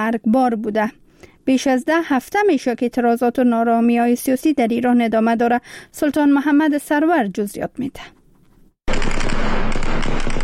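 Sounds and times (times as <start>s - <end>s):
speech: 0.0s - 8.2s
automatic gunfire at protesters: 8.9s - 10.4s.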